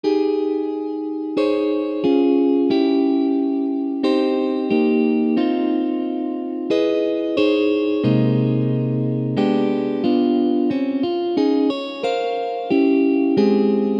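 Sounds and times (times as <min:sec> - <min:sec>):
small chord: 0:00.0 - 0:13.9.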